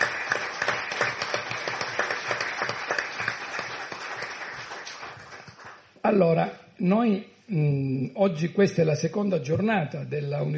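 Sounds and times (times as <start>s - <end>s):
audience applause: 0.0s - 5.8s
speech: 6.1s - 10.5s.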